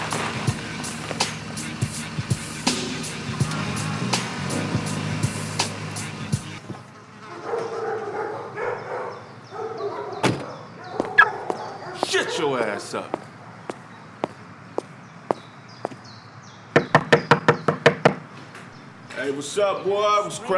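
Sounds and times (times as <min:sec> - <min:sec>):
indistinct voices talking: 0:00.0 - 0:16.0, 0:19.0 - 0:20.5
speech: 0:12.8 - 0:13.2, 0:19.4 - 0:20.5
knocking on a door: 0:16.8 - 0:18.2.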